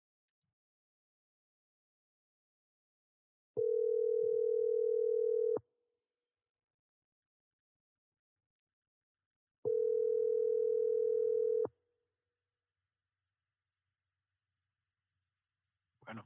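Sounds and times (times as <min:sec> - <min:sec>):
telephone ringback tone: 0:03.6 - 0:05.6, 0:09.6 - 0:11.7.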